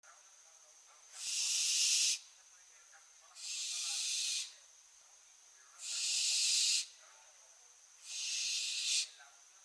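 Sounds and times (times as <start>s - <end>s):
faint steady whine: 0.0s - 9.6s
Barn owl Tyto alba screeching: 1.2s - 2.2s, 3.4s - 4.6s, 5.8s - 6.9s, 8.0s - 9.2s.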